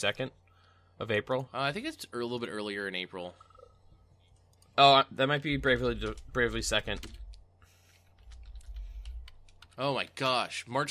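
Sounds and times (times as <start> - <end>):
speech: 0.0 - 0.4, 1.0 - 3.5, 4.8 - 7.2, 9.8 - 10.9
low steady hum: 0.0 - 10.9
typing on a computer keyboard: 5.6 - 7.4, 8.2 - 10.3.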